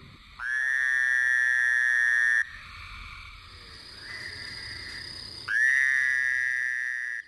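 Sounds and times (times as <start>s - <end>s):
Fowler's toad nasal buzzing call: 0.4s - 2.4s, 5.5s - 7.2s.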